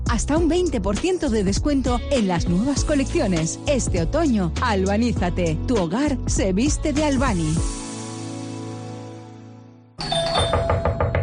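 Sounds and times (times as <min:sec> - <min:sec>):
speech: 0:00.1 - 0:07.8
doorbell ding-dong chime: 0:10.0 - 0:11.2.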